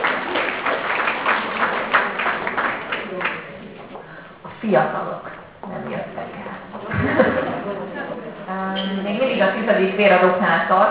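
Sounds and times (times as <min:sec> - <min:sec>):
crowd applauding a blood donor: 0:00.0 - 0:03.6
speech: 0:04.6 - 0:05.2, 0:09.4 - 0:10.9
laughter: 0:06.9 - 0:08.5.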